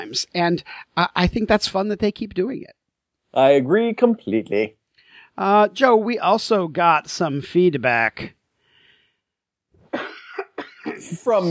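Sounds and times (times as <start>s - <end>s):
speech: 0.0s - 4.8s, 5.4s - 8.4s, 10.8s - 11.4s
person coughing: 9.9s - 11.3s.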